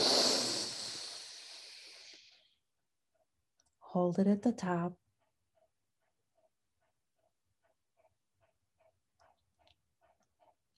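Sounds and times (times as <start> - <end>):
quick deep inhale: 0.0 - 2.5
speech: 3.9 - 5.0.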